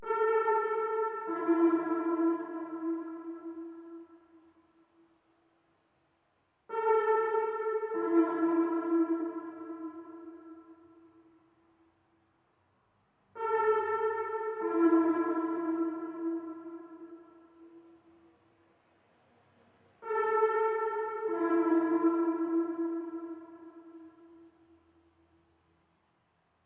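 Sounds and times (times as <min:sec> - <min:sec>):
trap synth melody loop in A minor: 0:00.0 - 0:04.0, 0:06.7 - 0:10.6, 0:13.4 - 0:17.3, 0:20.0 - 0:24.2.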